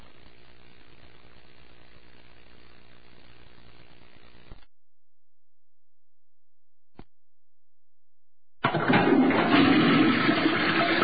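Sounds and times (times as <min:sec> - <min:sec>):
toilet flushing: 0:08.6 - 0:11.0.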